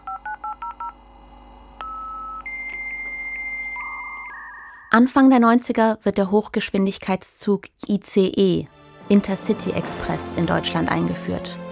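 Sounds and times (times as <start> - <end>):
dial-up modem dialing touch-tone beeps: 0.0 - 1.0, 1.8 - 5.0
speech: 4.9 - 11.6.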